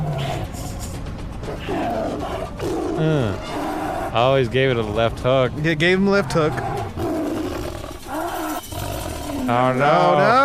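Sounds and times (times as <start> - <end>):
CGI Siberian tiger roaring in a movie fight scene: 0.0 - 0.7, 1.5 - 4.2, 6.0 - 9.6
dense noisy film soundtrack: 0.0 - 10.4
speech: 1.6 - 6.6, 9.5 - 10.4.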